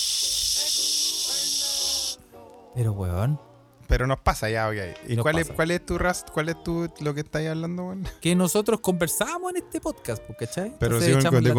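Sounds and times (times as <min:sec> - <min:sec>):
voice imitating white noise: 0:00.0 - 0:02.2
speech: 0:02.4 - 0:11.5.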